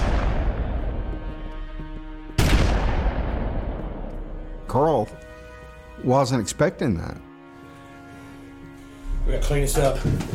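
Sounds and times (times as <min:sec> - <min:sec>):
gunshot from a gun fired at a person indoors: 0:00.0 - 0:01.0, 0:02.4 - 0:04.0
speech: 0:04.7 - 0:05.3, 0:06.0 - 0:07.3, 0:09.3 - 0:10.3.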